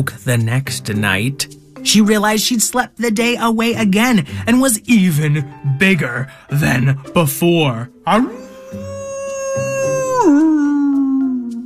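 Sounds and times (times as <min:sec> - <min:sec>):
speech: 0:00.0 - 0:08.9
large wolf howling: 0:08.2 - 0:11.3.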